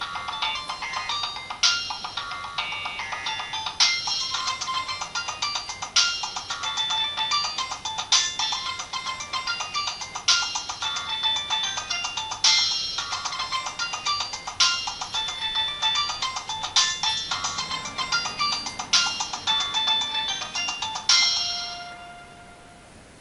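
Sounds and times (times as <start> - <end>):
Nokia 1680 mobile phone ringtone: 0.0 - 22.9.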